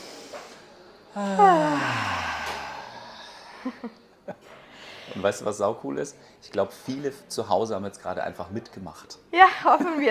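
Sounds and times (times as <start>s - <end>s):
group breathing out through the mouth during a guided exercise: 0.0s - 3.8s
speech: 1.2s - 2.1s, 3.6s - 4.5s, 5.1s - 10.1s.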